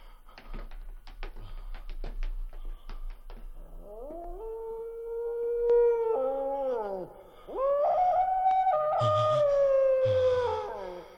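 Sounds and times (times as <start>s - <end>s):
dog howling: 3.8s - 11.0s.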